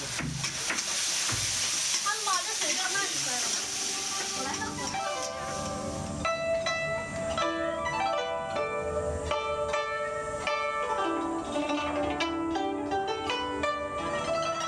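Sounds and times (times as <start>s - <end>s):
homemade Chinese dishes sizzling in a pan: 0.0s - 14.6s.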